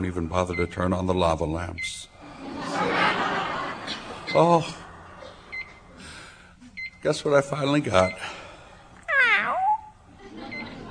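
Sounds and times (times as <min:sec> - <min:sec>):
speech: 0:00.0 - 0:02.1, 0:03.9 - 0:04.8, 0:07.0 - 0:08.4
faint low noise: 0:00.0 - 0:10.8
laughter: 0:02.2 - 0:06.0, 0:10.1 - 0:10.8
male house cat meowing: 0:09.1 - 0:10.0.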